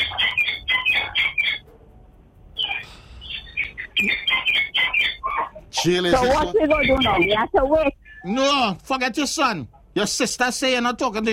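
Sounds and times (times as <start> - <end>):
parrot chirping and squawking: 0.0 - 1.6, 2.6 - 8.7
speech: 5.8 - 11.3.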